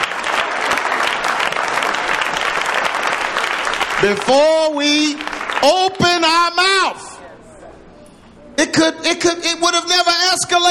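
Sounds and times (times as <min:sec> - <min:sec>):
crowd applauding: 0:00.0 - 0:06.6
speech: 0:04.0 - 0:07.1, 0:08.6 - 0:10.6.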